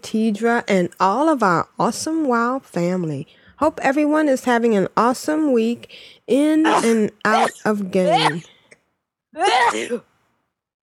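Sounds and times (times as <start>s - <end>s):
speech: 0.1s - 8.6s, 9.3s - 10.1s
person sneezing: 6.6s - 8.5s, 9.4s - 10.1s.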